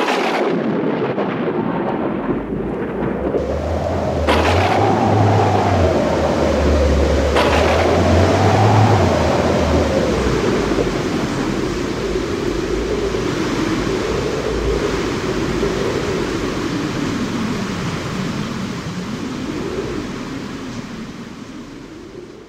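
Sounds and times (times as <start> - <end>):
deep thunder rolling and rumbling: 0.0 - 22.2
heavy rain: 0.0 - 22.4.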